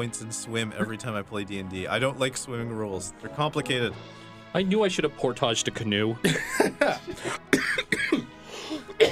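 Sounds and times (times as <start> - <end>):
speech: 0.0 - 8.2
laughter: 0.5 - 2.0, 6.2 - 7.5
person coughing in a harsh fit: 6.2 - 9.0
person gasping: 7.1 - 7.5, 8.4 - 9.0.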